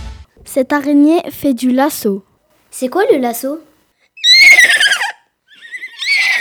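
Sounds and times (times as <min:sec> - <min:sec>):
speech: 0:00.6 - 0:03.7
horse neighing: 0:04.2 - 0:06.3.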